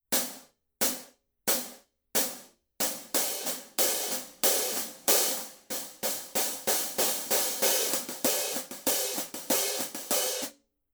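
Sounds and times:
Paiste Masters 16-inch thin hi-hat pattern: 2.2 - 10.5.

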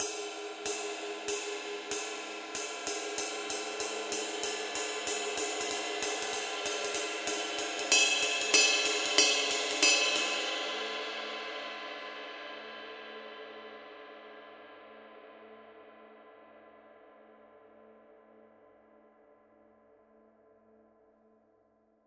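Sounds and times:
22 dark crisp ride cymbal pattern: 0.0 - 14.3.

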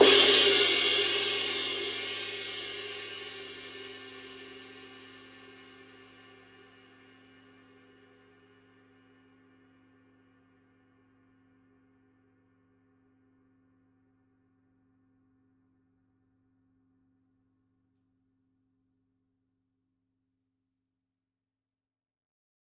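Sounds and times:
22-inch medium ride cymbal struck on the edge: 0.0 - 3.9.

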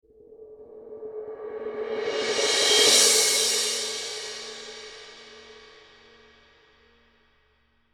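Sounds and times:
Paiste Signature Traditionals 17 thin crash cymbal roll: 1.8 - 6.4.

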